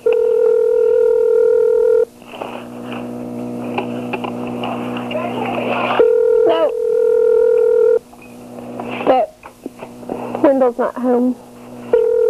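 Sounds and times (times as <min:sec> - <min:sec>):
telephone dial tone: 0:00.0 - 0:02.1, 0:04.1 - 0:08.0, 0:11.9 - 0:12.2
speech: 0:10.7 - 0:11.4.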